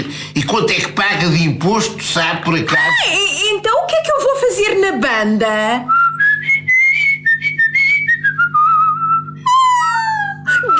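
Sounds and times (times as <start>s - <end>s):
speech: 0.4s - 6.0s
person whistling a lively tune: 5.9s - 9.8s.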